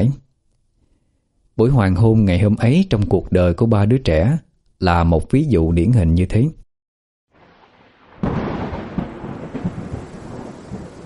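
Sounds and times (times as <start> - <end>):
speech: 0.0 - 0.2, 1.6 - 6.6
heavy rain during a nighttime thunderstorm: 7.4 - 11.0
thunder rumbling during a nighttime thunderstorm: 7.4 - 11.0.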